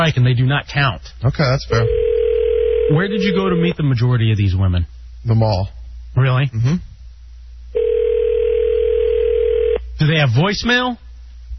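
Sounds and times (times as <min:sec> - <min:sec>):
speech: 0:00.0 - 0:02.1, 0:02.9 - 0:06.9, 0:10.0 - 0:11.0
telephone ringback tone on an outgoing call: 0:01.8 - 0:03.7, 0:07.8 - 0:09.8.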